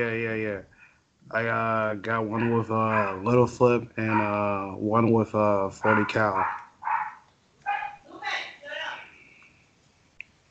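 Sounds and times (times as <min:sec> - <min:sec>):
speech: 0:00.0 - 0:06.6
puppy barking and yipping: 0:02.4 - 0:03.3, 0:05.8 - 0:08.0.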